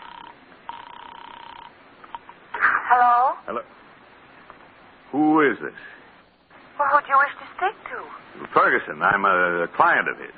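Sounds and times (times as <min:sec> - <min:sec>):
telephone ringing on a call to an apartment: 0:00.0 - 0:02.3
speech: 0:03.0 - 0:03.8, 0:05.1 - 0:06.0, 0:06.8 - 0:10.3.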